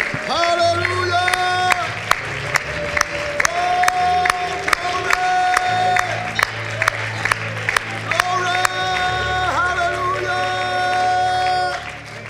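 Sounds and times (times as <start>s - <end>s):
audience cheering: 0.0s - 12.2s
audience clapping along in a steady rhythm: 0.0s - 12.2s
loud sustained music: 0.0s - 12.2s.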